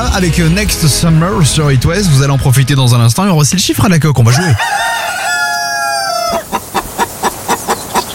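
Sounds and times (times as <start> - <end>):
speech: 0.2 - 5.0
hen clucking in a radio jingle: 4.3 - 8.1
rooster crowing in a radio jingle: 4.3 - 8.1.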